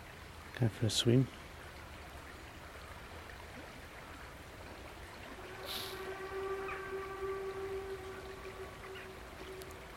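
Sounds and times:
speech: 0.6s - 1.4s
steam train sounding a long whistle: 5.2s - 9.9s.

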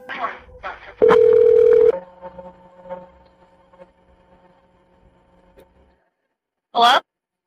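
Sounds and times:
voices on phone line: 0.0s - 1.2s
sharp phone keypad or dial tone on a phone line while redialing: 1.0s - 1.9s
faint steady phone line hum and static: 1.0s - 2.0s.

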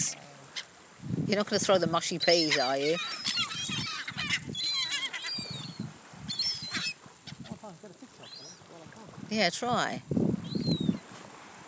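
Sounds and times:
speech: 1.0s - 3.2s, 9.3s - 10.2s
flock of more than fifty birds screeching and honking: 2.1s - 8.7s.

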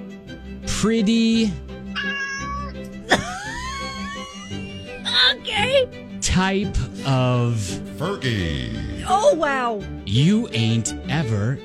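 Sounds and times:
speech: 0.8s - 2.2s, 5.5s - 11.6s
cat meowing: 1.9s - 2.8s
laughter: 3.1s - 5.4s.

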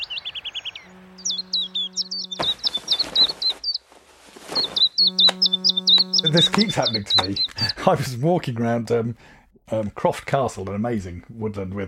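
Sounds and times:
old and young swifts screaming in flight around a town on a summer evening: 0.0s - 3.8s, 4.5s - 7.8s
low steady hum: 0.8s - 3.2s, 5.0s - 7.7s
speech: 6.2s - 11.8s.

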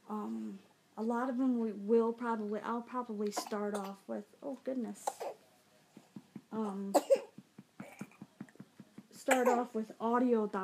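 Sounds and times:
speech: 1.0s - 5.4s, 6.5s - 7.2s, 9.3s - 10.6s
person having a short coughing fit: 6.9s - 8.5s, 9.2s - 9.7s.

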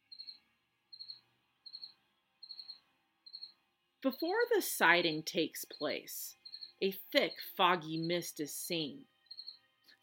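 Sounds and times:
cricket chirping in a garage: 0.0s - 3.6s, 5.7s - 6.8s, 9.2s - 9.6s
speech: 4.0s - 9.1s.

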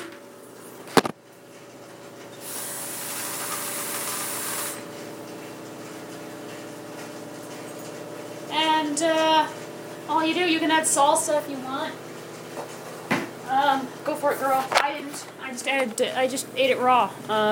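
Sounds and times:
washing machine running with a low mechanical hum: 0.0s - 17.4s
rushing hissing water: 2.4s - 4.9s
speech: 9.0s - 12.0s, 13.7s - 17.4s.

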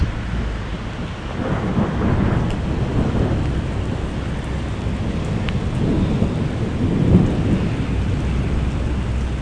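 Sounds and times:
low thunder rumbling: 0.0s - 9.4s
steady rain: 0.0s - 9.4s.

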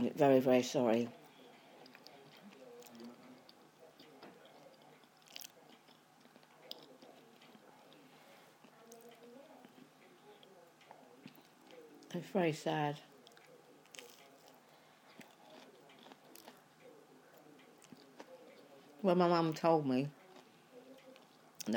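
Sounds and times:
speech: 0.1s - 1.2s, 12.2s - 13.1s, 19.0s - 20.2s
person chewing food: 1.4s - 8.0s, 8.6s - 12.1s, 13.2s - 18.7s.

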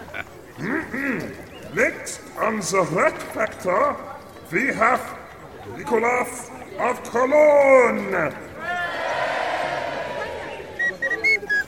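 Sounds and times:
speech: 0.6s - 8.4s
busy crowd-like roar: 8.6s - 10.8s
tiny whistle giving quick thin shrill peeps: 10.5s - 11.6s.

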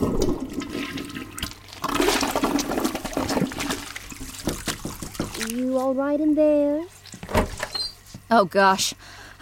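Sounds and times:
toilet flushing with swirling water: 0.0s - 5.6s
speech: 5.8s - 7.0s, 8.3s - 9.4s.

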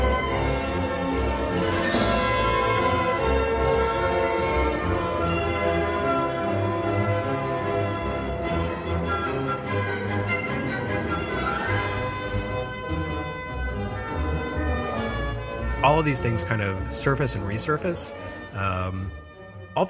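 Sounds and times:
dense orchestral music with sustained strings and brass: 0.0s - 19.8s
speech: 15.8s - 19.8s.

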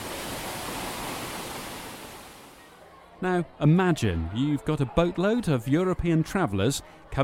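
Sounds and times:
waterfall plunging over rock: 0.0s - 2.6s
speech: 3.2s - 7.2s.

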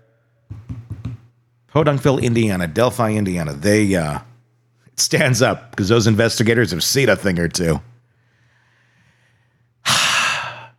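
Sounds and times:
speech: 1.7s - 4.3s, 5.0s - 7.9s
deep heavy breath like a sigh: 8.2s - 10.7s.

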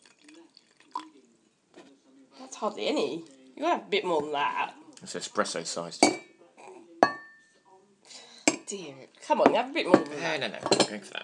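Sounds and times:
coffee pouring from a cafetiere into a cup: 0.0s - 1.4s
speech: 2.6s - 6.2s, 8.7s - 11.2s.

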